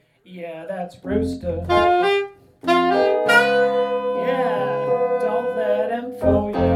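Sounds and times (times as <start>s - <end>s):
horn section playing: 1.7s - 5.9s.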